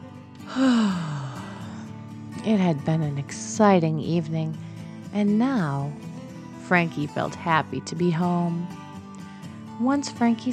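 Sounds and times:
speech: 0.5 - 1.1, 2.4 - 6.1, 6.7 - 8.8, 9.8 - 10.5
narrator imitating a yawn: 0.5 - 1.9.

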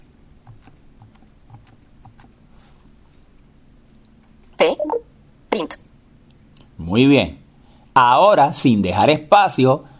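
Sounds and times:
typing a line of code on a computer keyboard: 0.4 - 2.4
speech: 7.0 - 7.4, 8.0 - 9.9.

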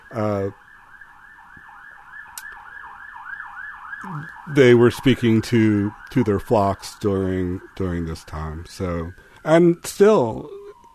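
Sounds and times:
emergency vehicle siren wailing outside: 0.0 - 10.9
speech: 0.1 - 0.6, 4.1 - 10.6.

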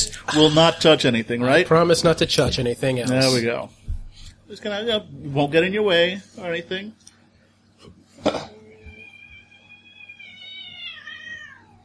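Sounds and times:
speech: 0.3 - 3.8, 4.5 - 7.0, 7.8 - 8.6
cat complaining meow: 8.8 - 11.8.

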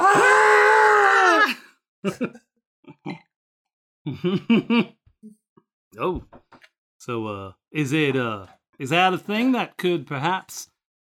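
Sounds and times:
screaming from ghost rock being shovelled aboard a train: 0.0 - 1.6
speech: 2.0 - 2.5, 4.1 - 5.0, 6.0 - 6.4, 7.0 - 10.7.

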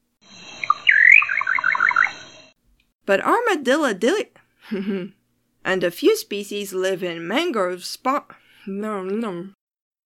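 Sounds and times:
little nightjar call with whistled slur and bright notes: 0.6 - 2.1
speech: 3.1 - 9.6.

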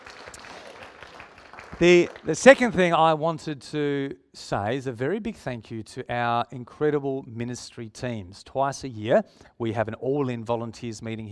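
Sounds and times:
audience applause: 0.0 - 2.6
speech: 1.8 - 11.3.

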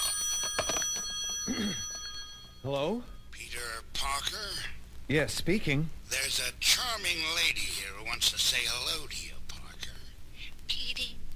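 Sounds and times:
telephone bell ringing: 0.0 - 3.3
speech: 2.6 - 9.3.

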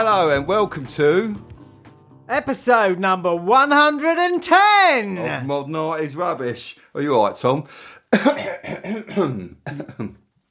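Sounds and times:
speech: 0.0 - 1.5, 2.3 - 10.2
person clearing throat: 8.2 - 10.2.

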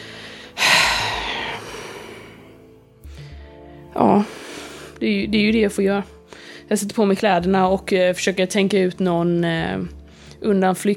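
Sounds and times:
deep breath drawn in sharply and let out slowly: 0.0 - 5.0
speech: 4.0 - 4.4, 5.0 - 10.9.

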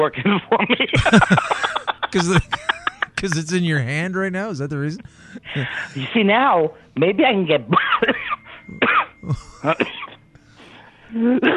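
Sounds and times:
speech: 0.0 - 8.2, 9.3 - 10.0, 11.1 - 11.5
laughter: 0.9 - 6.0, 9.2 - 10.0
person coughing after inhaling from a vape: 1.0 - 3.3, 5.0 - 6.0, 8.8 - 10.0.

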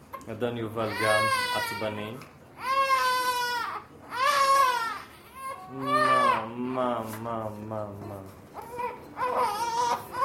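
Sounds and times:
speech: 0.3 - 2.4, 5.8 - 6.0, 6.8 - 8.4
fussy infant with gas pains crying: 0.8 - 2.0, 2.6 - 6.5, 8.6 - 10.2.

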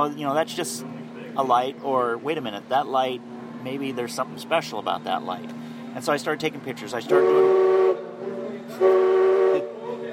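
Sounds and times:
speech: 0.0 - 7.7, 8.8 - 9.1
passing train blowing its whistle: 7.1 - 10.0.

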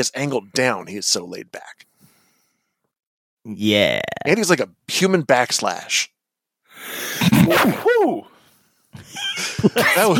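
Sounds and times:
speech: 0.0 - 1.9, 3.4 - 6.1, 6.8 - 8.3, 9.0 - 10.1
person sneezing: 6.8 - 8.2
laughter: 9.0 - 10.1.

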